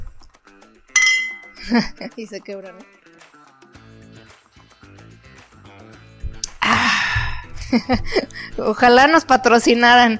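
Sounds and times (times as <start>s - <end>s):
beer bottles clinking together in a toast: 1.0s - 1.6s
laughter: 1.6s - 2.2s, 7.6s - 8.4s
speech: 1.6s - 3.0s, 7.7s - 10.1s.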